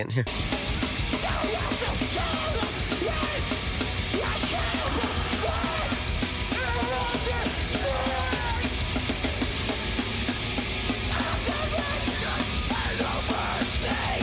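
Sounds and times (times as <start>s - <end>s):
speech: 0.0s - 0.6s
distorted guitars: 0.0s - 14.2s
pounding drums: 0.3s - 14.2s
harsh screamed vocals: 1.0s - 9.0s, 11.0s - 14.2s.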